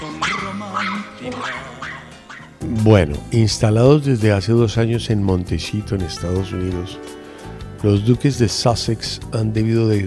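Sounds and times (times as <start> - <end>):
dog barking with short yelping barks: 0.0 - 2.6
speech: 0.6 - 2.0, 2.6 - 7.2, 7.8 - 10.0.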